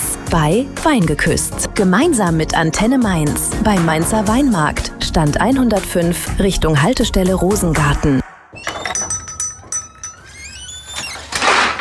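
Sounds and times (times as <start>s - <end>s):
speech: 0.3s - 8.2s
metal contents of a kitchen drawer rattling and clinking: 8.6s - 10.4s
kitchen drawer sliding with a squeaky scraping glide: 10.8s - 11.7s.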